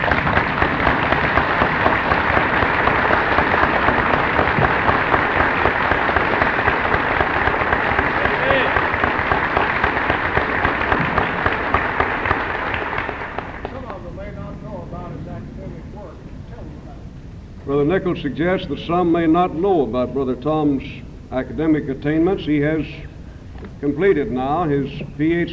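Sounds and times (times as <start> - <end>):
large standing audience applauding: 0.0 - 14.1
speech: 17.9 - 23.1, 23.8 - 25.5.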